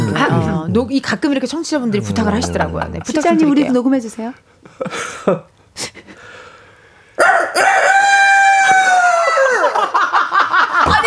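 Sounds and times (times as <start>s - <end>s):
speech: 0.7s - 6.0s
laughter: 1.9s - 3.7s, 9.2s - 11.0s
person imitating rooster crow: 7.2s - 9.7s.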